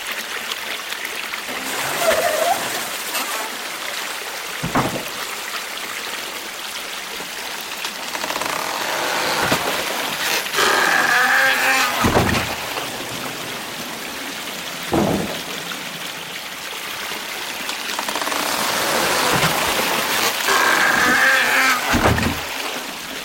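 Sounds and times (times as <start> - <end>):
steady rush of river water flowing: 0.0 - 23.2
water-powered wooden mortar creaking at Onta Pottery Village in Japan: 4.6 - 5.3, 7.9 - 13.2, 14.9 - 15.7, 17.7 - 22.9.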